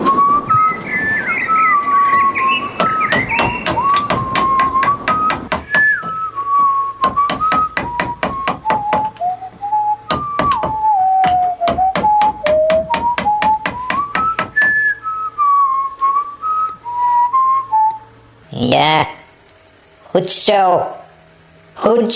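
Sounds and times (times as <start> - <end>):
person whistling a wandering melody: 0.1 - 18.1
sharp rhythmic knocking strokes: 0.3 - 15.0
speech: 20.2 - 21.0, 21.8 - 22.1.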